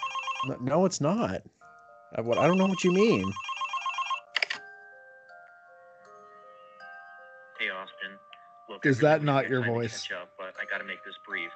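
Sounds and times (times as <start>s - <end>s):
electronic phone ringtone: 0.0s - 0.7s, 1.8s - 8.3s
speech: 0.4s - 3.5s, 8.8s - 11.5s.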